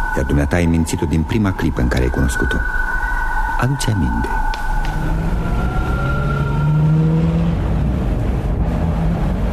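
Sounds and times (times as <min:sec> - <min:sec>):
speech: 0:00.1 - 0:03.0, 0:03.6 - 0:05.4
bus engine droning with whining tones: 0:04.5 - 0:09.5
passing traffic: 0:04.5 - 0:09.5.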